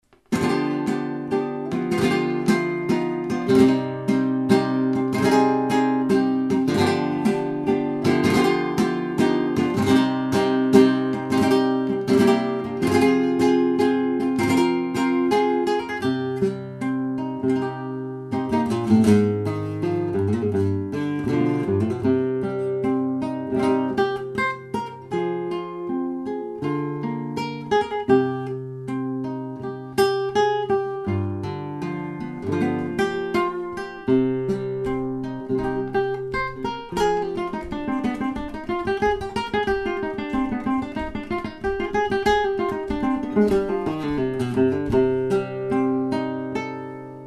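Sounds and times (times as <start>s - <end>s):
farruca flamenco music: 0.0s - 47.2s.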